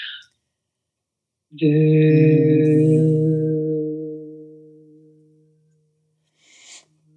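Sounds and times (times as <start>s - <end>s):
person humming a low held voo note imitating a foghorn: 1.6s - 5.6s
breath sounds: 6.3s - 7.0s.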